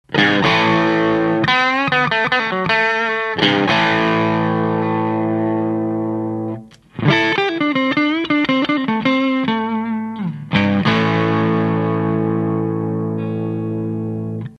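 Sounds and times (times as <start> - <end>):
Stratocaster electric guitar on rear and front pickups: 0.0 - 14.5.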